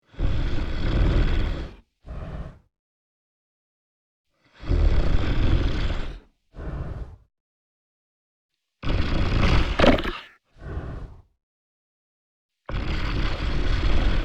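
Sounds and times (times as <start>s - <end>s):
dragon snoring while sleeping: 0.0s - 2.7s, 4.5s - 7.3s, 8.8s - 11.3s, 12.7s - 14.2s.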